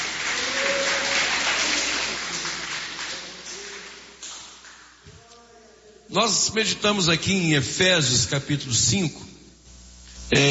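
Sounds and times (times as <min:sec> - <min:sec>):
crowd clapping: 0:00.0 - 0:05.0
speech: 0:06.1 - 0:09.3, 0:10.3 - 0:10.4.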